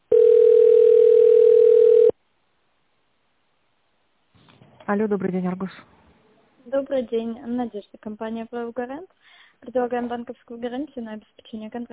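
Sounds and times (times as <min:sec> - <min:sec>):
telephone tone while a call is connecting: 0:00.1 - 0:02.2
speech: 0:04.9 - 0:06.0, 0:06.7 - 0:11.9.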